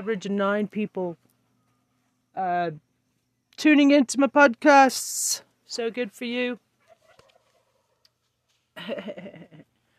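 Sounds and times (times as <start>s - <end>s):
speech: 0.0s - 1.2s, 2.4s - 2.9s, 3.6s - 6.6s, 8.8s - 9.7s
turkey gobbling: 6.8s - 8.0s
laughter: 8.8s - 9.7s.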